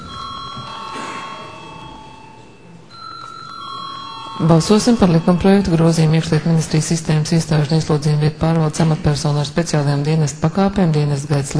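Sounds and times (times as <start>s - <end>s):
bell rung in parliament chamber before a vote: 0.0s - 7.2s
low murmur in a parliament chamber: 0.0s - 11.5s
speech: 4.4s - 11.5s.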